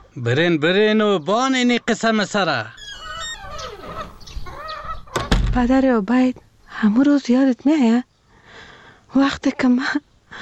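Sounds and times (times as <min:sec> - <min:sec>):
speech: 0:00.2 - 0:02.8, 0:05.5 - 0:08.1, 0:09.1 - 0:10.4
hens clucking while being fed grain: 0:01.2 - 0:06.5
drawn-out bright warbling hen calls: 0:02.7 - 0:05.4.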